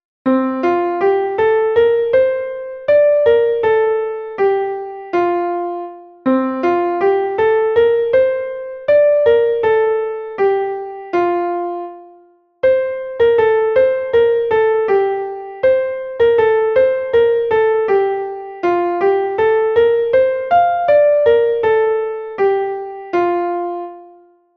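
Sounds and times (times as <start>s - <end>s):
piano piece: 0.2s - 24.5s.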